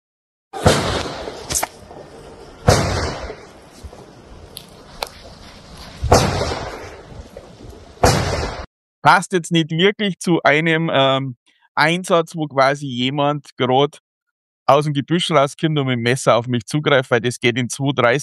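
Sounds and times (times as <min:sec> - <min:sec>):
simulated gunshots with rumbling echo: 0:00.6 - 0:08.7
speech: 0:09.0 - 0:14.0, 0:14.7 - 0:18.2.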